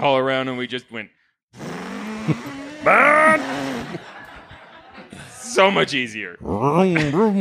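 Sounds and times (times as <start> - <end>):
speech: 0.0 - 4.1, 5.1 - 7.3
voice imitating a motorcycle engine: 1.6 - 4.0
laughter: 2.2 - 6.1.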